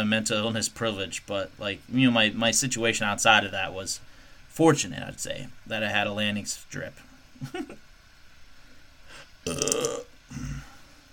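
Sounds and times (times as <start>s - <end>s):
speech: 0.0s - 7.9s, 9.4s - 10.7s
man burping loudly with gurgling texture: 9.4s - 10.8s
low grunt-like sound: 9.5s - 10.8s.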